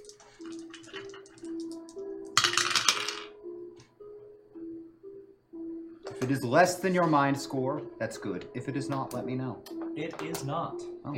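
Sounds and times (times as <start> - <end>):
two eight-sided dice rolled during a tabletop role-playing game: 0.0 - 3.3
soft music: 0.0 - 11.1
speech: 6.2 - 11.1.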